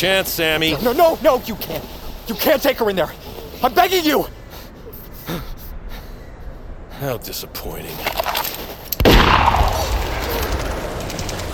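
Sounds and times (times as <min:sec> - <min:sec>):
speech: 0:00.0 - 0:04.4, 0:07.0 - 0:08.3
gunshot fired by a sheriff in the snow: 0:09.0 - 0:11.1.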